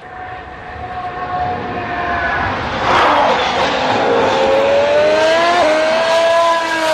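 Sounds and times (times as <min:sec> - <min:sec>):
racing car with Mercedes engine roaring past trackside: 0:00.0 - 0:06.9.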